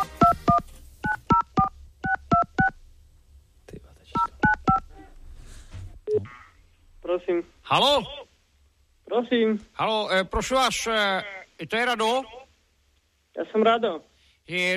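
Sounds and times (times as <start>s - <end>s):
touch-tone telephone dialing beeps for a call to Slovakia: 0.0s - 2.7s, 4.2s - 4.9s
speech: 7.3s - 8.2s, 9.2s - 12.4s, 13.4s - 14.7s.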